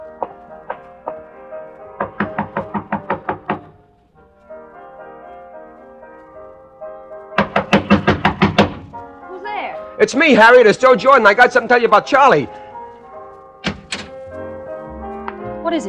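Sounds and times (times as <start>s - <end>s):
soft music: 0.0s - 15.8s
knocking on a door: 2.0s - 3.8s, 7.4s - 9.0s, 13.6s - 14.1s
speech: 10.0s - 12.6s.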